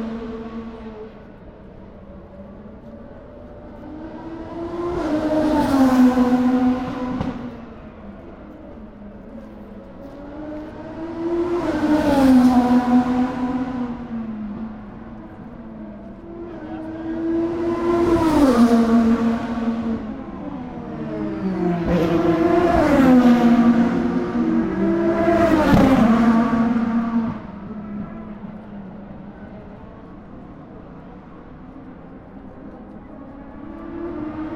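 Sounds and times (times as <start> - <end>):
IndyCar race car engines braking between turns 3 and 4: 2.9 - 34.5.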